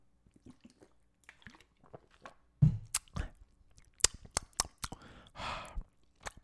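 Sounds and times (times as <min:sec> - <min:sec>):
person sipping water with slurps and lip smacks: 0:00.3 - 0:06.4
gulping clicks: 0:02.6 - 0:06.4.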